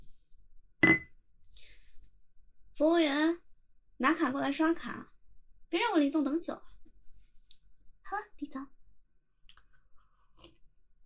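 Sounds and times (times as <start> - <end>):
glasses clinking in a toast: 0.8 - 1.1
speech: 2.8 - 3.4, 4.0 - 5.1, 5.7 - 6.8, 8.1 - 8.7.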